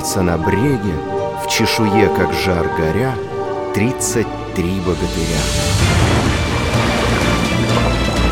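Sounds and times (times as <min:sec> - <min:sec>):
speech: 0:00.1 - 0:06.3
sea surf crashing and surging onto the shore: 0:05.0 - 0:08.2.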